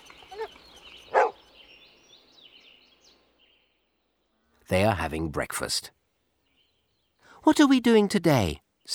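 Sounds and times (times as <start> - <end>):
faint birdsong: 0.0 - 8.9
dog barking: 1.1 - 1.4
speech: 4.7 - 6.0, 7.4 - 8.9.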